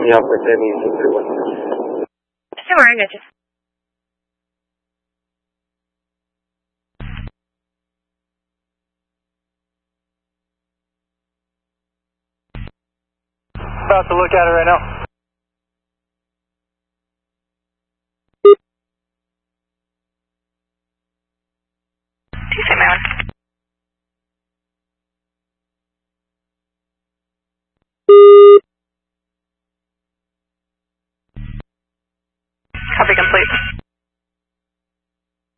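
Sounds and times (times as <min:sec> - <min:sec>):
speech: 0:00.0 - 0:01.8, 0:02.7 - 0:03.4, 0:13.9 - 0:15.0, 0:33.1 - 0:33.7
crackly radio noise: 0:00.0 - 0:03.2, 0:13.6 - 0:15.1, 0:22.4 - 0:23.2, 0:32.8 - 0:33.8
electronic phone tones of a call going to voicemail: 0:28.1 - 0:28.6.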